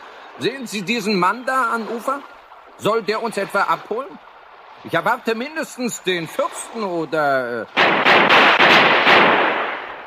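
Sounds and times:
speech: 0.4 - 9.4
rifle gunfire salute on a shore: 7.7 - 10.0.

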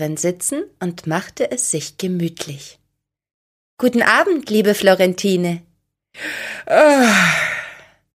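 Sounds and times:
speech: 0.0 - 2.8, 3.8 - 7.6
person yawning: 6.6 - 7.9.

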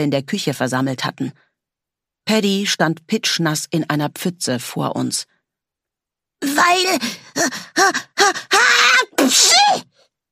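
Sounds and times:
speech: 0.0 - 1.5, 2.2 - 5.4, 6.4 - 9.9
person acting out a sneeze: 9.1 - 9.9.

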